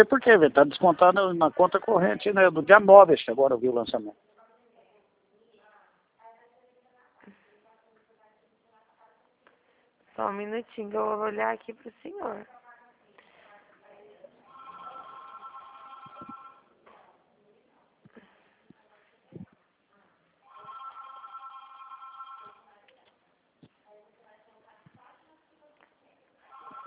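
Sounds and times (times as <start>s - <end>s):
speech: 0.0s - 4.3s, 10.2s - 12.6s
telephone ringing: 14.5s - 16.7s, 20.5s - 22.7s, 26.5s - 26.8s.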